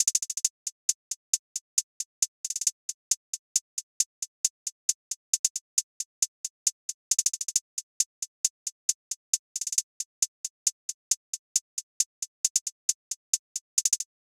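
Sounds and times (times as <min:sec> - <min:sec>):
hi-hat drum loop at 135 BPM: 0:00.0 - 0:14.1.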